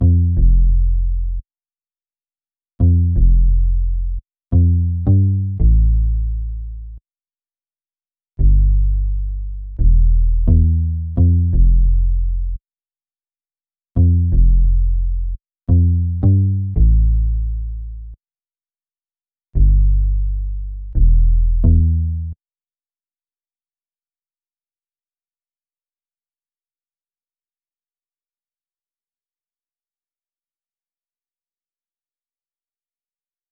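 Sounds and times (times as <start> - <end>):
172 BPM A minor bass loop: 0.0 - 1.4, 2.8 - 7.0, 8.4 - 12.6, 14.0 - 18.2, 19.6 - 22.4.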